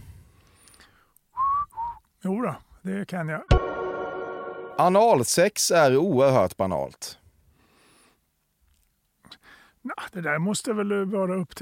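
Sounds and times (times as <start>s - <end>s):
person whistling two short clear notes: 1.4s - 2.0s
speech: 2.2s - 3.7s, 4.8s - 7.2s, 9.8s - 11.6s.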